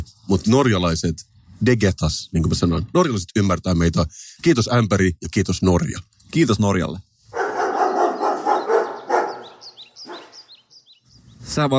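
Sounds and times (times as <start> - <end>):
speech: 0.3 - 7.1, 11.5 - 11.7
dog barking: 7.3 - 10.5.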